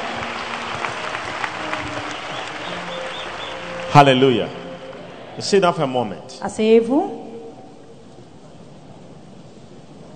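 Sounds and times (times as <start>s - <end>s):
large crowd applauding: 0.0s - 6.0s
faint voices and cheers: 0.0s - 6.3s
speech: 3.9s - 4.6s, 5.4s - 7.2s.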